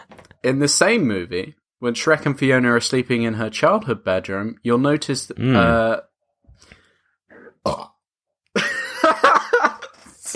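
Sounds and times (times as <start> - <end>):
speech: 0.4 - 6.8
person burping: 5.3 - 6.0, 7.5 - 8.1
rough voiced sound: 5.3 - 6.0
laughter: 8.6 - 10.1.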